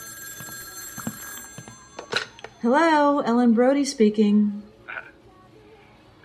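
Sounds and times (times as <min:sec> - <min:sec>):
telephone bell ringing: 0:00.0 - 0:03.0
speech: 0:02.6 - 0:04.7.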